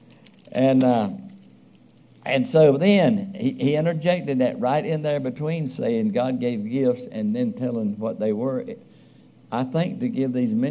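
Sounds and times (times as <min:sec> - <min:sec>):
jangle of keys: 0:00.0 - 0:01.9
speech: 0:00.5 - 0:01.2, 0:02.2 - 0:08.9, 0:09.5 - 0:10.6.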